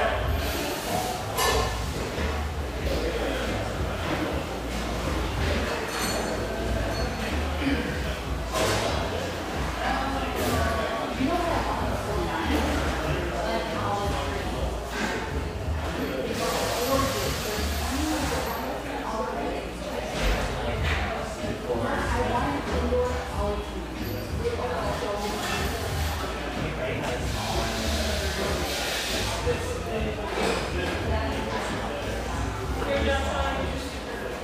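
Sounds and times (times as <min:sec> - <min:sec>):
steady overlapping chatter in a sunlit coffeehouse: 0:00.0 - 0:34.4
cup and dish clinks: 0:01.0 - 0:02.2, 0:04.0 - 0:09.0.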